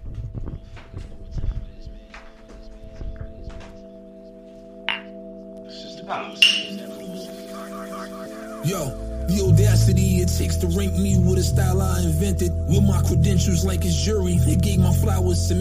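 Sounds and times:
voices murmuring: 0:00.6 - 0:04.5, 0:05.7 - 0:09.0
glasses clinking in a toast: 0:04.9 - 0:05.2, 0:06.4 - 0:06.9
speech: 0:06.1 - 0:15.5.

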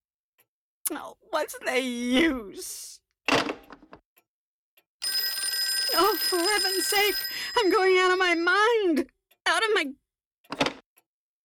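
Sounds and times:
speech: 0:00.9 - 0:03.4, 0:06.0 - 0:10.7
old-fashioned telephone bell ringing: 0:05.0 - 0:08.5.

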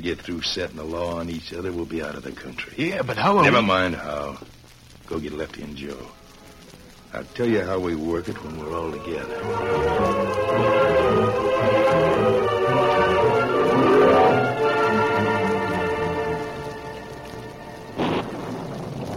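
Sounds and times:
speech: 0:00.0 - 0:06.2, 0:07.1 - 0:13.4
heavy wind-driven rain falling at night: 0:00.0 - 0:19.1.

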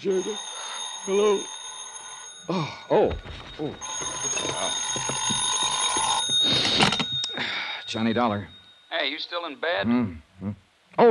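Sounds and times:
speech: 0:00.0 - 0:01.6, 0:02.5 - 0:05.4, 0:07.9 - 0:11.1
telephone bell ringing: 0:00.0 - 0:09.5.

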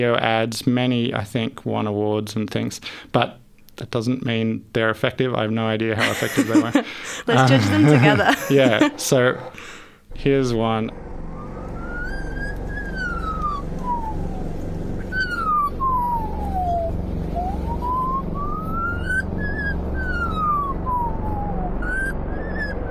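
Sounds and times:
speech: 0:00.0 - 0:11.1
laughter: 0:06.0 - 0:09.8
Australian magpie mimicking a fire siren: 0:11.2 - 0:22.9.

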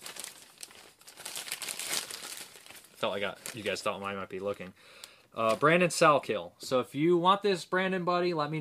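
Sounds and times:
paper name slips crinkling and rustling as names are drawn for a prize draw: 0:00.0 - 0:05.8
speech: 0:03.0 - 0:08.5.

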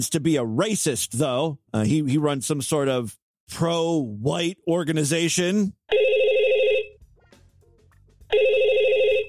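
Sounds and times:
speech: 0:00.0 - 0:06.0
telephone ringing with trilling electronic ring bursts: 0:05.9 - 0:07.0, 0:08.3 - 0:09.2.

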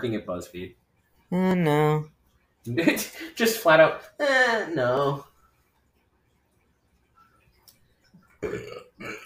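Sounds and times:
speech: 0:00.0 - 0:05.3
loud gurgling burp: 0:08.4 - 0:09.2.

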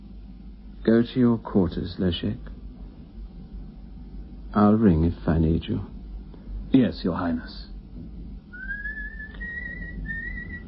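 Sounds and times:
low steady rumble: 0:00.0 - 0:10.6
speech: 0:00.8 - 0:02.5, 0:04.6 - 0:05.9, 0:06.7 - 0:07.7
man whistling a slow tune: 0:08.5 - 0:10.6.

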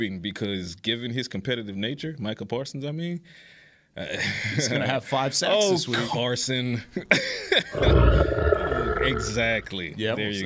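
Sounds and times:
speech: 0:00.0 - 0:10.4
loud deep guttural burp-like grunt: 0:07.7 - 0:09.7.

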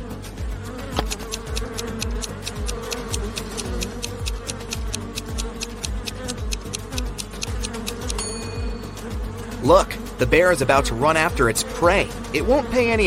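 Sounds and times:
angry swarm of bees buzzing: 0:00.0 - 0:13.0
rapid regular clicking ticks: 0:01.0 - 0:08.2
speech: 0:09.7 - 0:13.0.

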